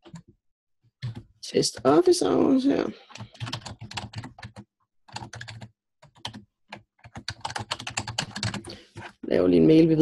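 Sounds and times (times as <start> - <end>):
typing on a computer keyboard while filling in a web order form: 0.0 - 0.3, 1.0 - 1.3, 3.1 - 9.1
speech: 1.5 - 3.6, 9.4 - 9.9.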